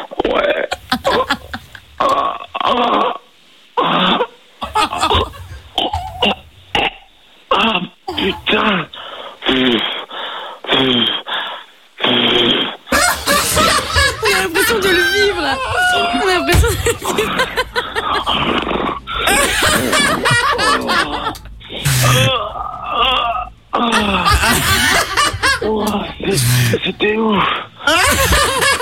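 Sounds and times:
exaggerated faked orgasm moans: 0:00.2 - 0:11.3, 0:12.0 - 0:28.8
snickering laughter: 0:00.7 - 0:02.2, 0:04.1 - 0:06.4, 0:12.9 - 0:27.1, 0:27.9 - 0:28.8.

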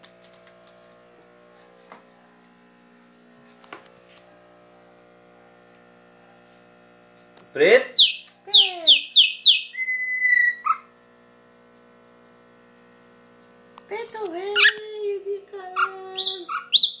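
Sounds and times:
speech: 0:07.6 - 0:08.0
Chopi blackbird singing: 0:08.0 - 0:10.6, 0:16.2 - 0:16.9.

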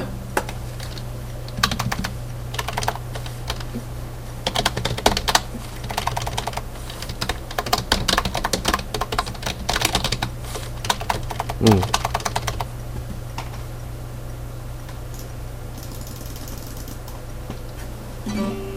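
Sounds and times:
steady low hum: 0:00.0 - 0:18.7
computer keyboard typing: 0:00.5 - 0:03.7, 0:04.4 - 0:12.7, 0:15.1 - 0:17.2.

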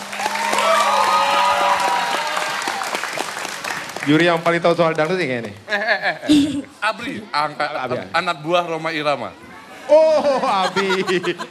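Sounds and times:
audience applause after a child's dangdut song at a junior singing competition: 0:00.0 - 0:05.5
speech: 0:04.0 - 0:11.5
laughter: 0:05.7 - 0:06.7, 0:09.9 - 0:11.5.

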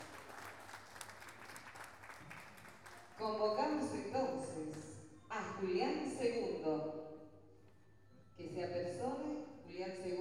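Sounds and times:
audience applause at a pluricultural gathering of living languages in Salta: 0:00.0 - 0:03.2
speech: 0:03.2 - 0:07.0, 0:08.4 - 0:10.1.

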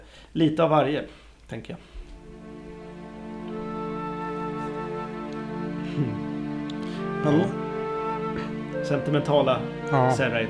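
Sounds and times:
speech: 0:00.4 - 0:01.9, 0:06.0 - 0:06.2, 0:07.2 - 0:07.6, 0:08.8 - 0:10.4
slow orchestral film music with sustained string-like chords: 0:02.1 - 0:10.4.

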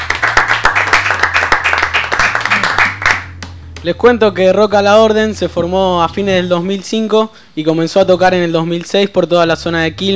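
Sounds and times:
crowd applauding a guest band: 0:00.0 - 0:03.6
faint low hum: 0:00.0 - 0:10.1
speech: 0:03.8 - 0:10.1.

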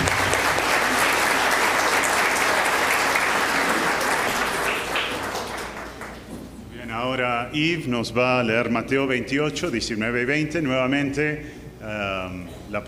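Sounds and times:
applause from a congregation in a church: 0:00.0 - 0:06.4
speech: 0:07.6 - 0:12.8.

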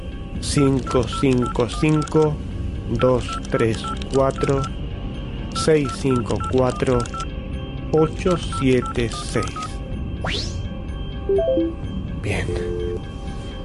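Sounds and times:
speech: 0:00.4 - 0:04.8, 0:05.5 - 0:07.3, 0:07.9 - 0:10.6, 0:11.3 - 0:13.1
telephone keypad tones as a number is dialed: 0:00.6 - 0:02.3, 0:03.2 - 0:04.7, 0:05.6 - 0:07.3, 0:08.5 - 0:09.7, 0:11.3 - 0:11.8.

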